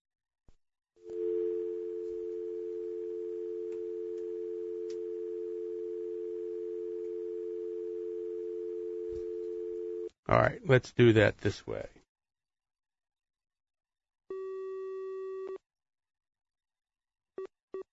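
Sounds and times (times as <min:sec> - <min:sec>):
telephone dial tone while calling a cell phone: 0:01.0 - 0:10.1, 0:14.3 - 0:15.6
speech: 0:10.3 - 0:12.0.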